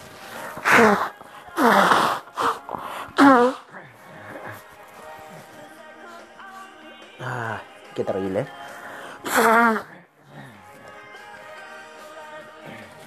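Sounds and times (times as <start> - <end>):
person blowing nose into a handkerchief: 0.0 - 5.4, 9.2 - 10.0
speech: 0.8 - 1.9, 8.0 - 8.6, 9.4 - 9.9.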